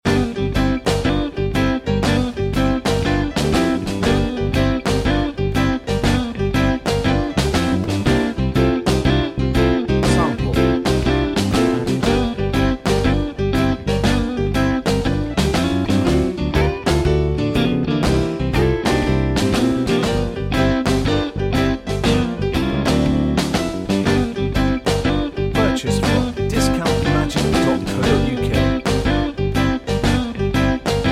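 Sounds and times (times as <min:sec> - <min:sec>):
upbeat piano music: 0:00.1 - 0:31.1.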